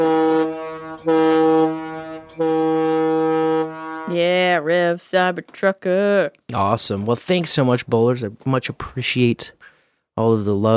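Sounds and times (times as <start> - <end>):
loud sustained horn honking: 0.0 - 4.6
speech: 4.6 - 9.6, 10.2 - 10.7.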